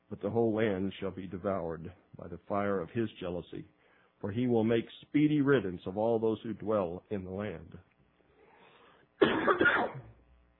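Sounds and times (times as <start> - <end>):
speech: 0.1 - 7.9, 9.5 - 10.1
throaty rasping cough: 9.2 - 10.2.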